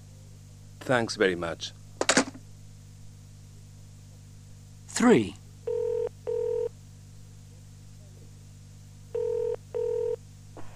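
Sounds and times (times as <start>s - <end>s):
low steady electrical hum: 0.0s - 10.7s
speech: 0.8s - 1.8s, 5.0s - 5.4s
telephone ringing tone heard down the line: 5.6s - 6.7s, 9.1s - 10.2s.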